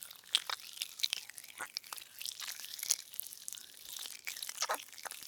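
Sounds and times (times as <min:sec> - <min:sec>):
slimy wet slug crawling movement: 0:00.1 - 0:02.5, 0:04.3 - 0:05.2.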